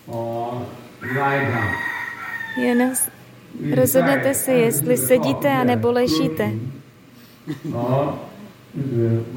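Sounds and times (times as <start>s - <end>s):
speech: 0.1s - 1.8s, 2.6s - 6.8s, 7.4s - 9.3s
rooster crowing: 1.0s - 3.2s.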